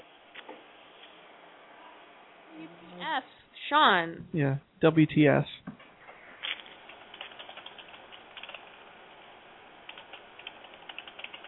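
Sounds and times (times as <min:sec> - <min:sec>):
speech: 0:02.6 - 0:05.8
typing on a computer keyboard: 0:06.6 - 0:08.8, 0:09.9 - 0:11.4.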